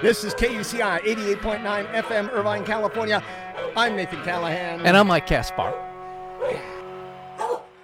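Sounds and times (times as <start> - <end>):
speech: 0.0 - 6.8
dog barking: 2.0 - 2.7, 3.6 - 3.8, 5.6 - 6.8, 7.4 - 7.8.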